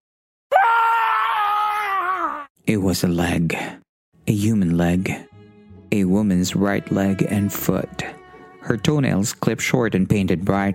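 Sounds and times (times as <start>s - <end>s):
man screaming in horror opening a package: 0.5s - 2.5s
speech: 2.7s - 5.3s, 5.9s - 10.7s.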